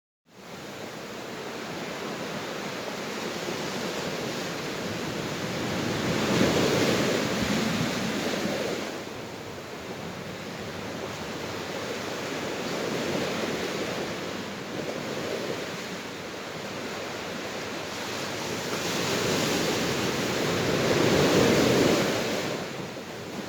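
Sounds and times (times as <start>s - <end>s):
ocean waves: 0.3s - 23.4s.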